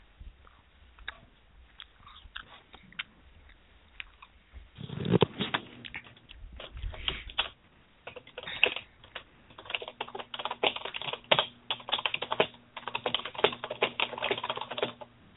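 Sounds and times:
faint steady hum: 0.0 - 15.3
forceful computer keyboard typing: 7.3 - 15.2.

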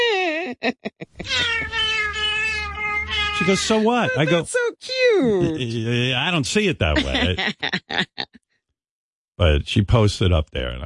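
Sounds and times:
laughter: 0.0 - 1.8, 3.4 - 4.5, 5.4 - 8.2
speech: 0.6 - 1.6, 3.4 - 8.4, 9.4 - 10.8
cat meowing and yowling: 1.2 - 4.4.

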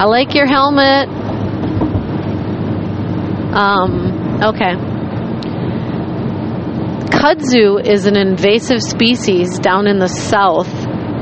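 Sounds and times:
speech: 0.0 - 1.2, 3.6 - 4.9, 7.2 - 10.8
motorcycle engine rumble: 0.0 - 9.8.

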